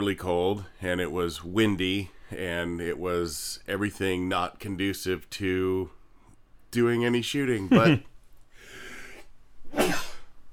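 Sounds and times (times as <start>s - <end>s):
speech: 0.0s - 6.0s, 6.7s - 8.1s
sneeze in bitterly cold windy weather: 9.7s - 10.3s.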